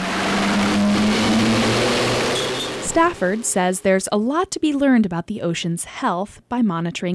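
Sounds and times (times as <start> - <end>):
big boat engine droning at sea: 0.0 - 3.9
speech: 3.0 - 7.1.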